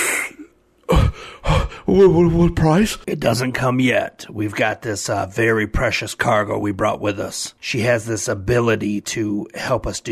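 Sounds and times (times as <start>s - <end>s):
voice imitating a man breathing heavily: 0.0s - 1.9s
voice imitating gasping inhaler puffs: 0.0s - 1.9s
speech: 1.9s - 10.1s.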